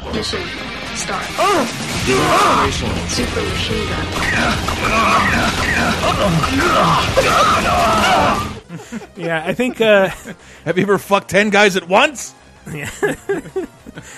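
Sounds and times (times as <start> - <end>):
speech: 0.1 - 14.1
grunting, yelling and screaming voices from a 2D action game: 1.3 - 9.5
laughter: 4.3 - 11.0, 12.7 - 14.1.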